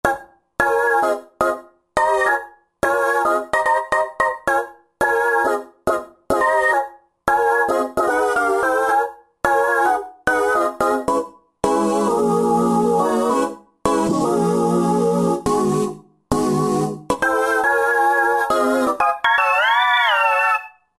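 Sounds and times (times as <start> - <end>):
Roland JV-2080 synthesizer: 0.0 - 20.9.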